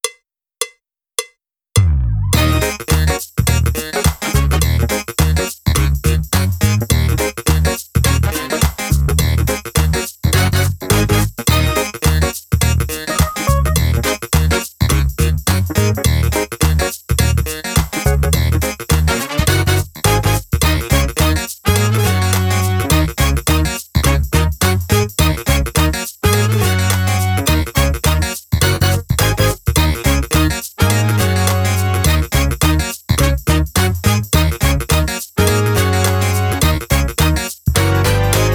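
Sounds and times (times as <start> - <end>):
drumless music track: 0.0 - 38.5.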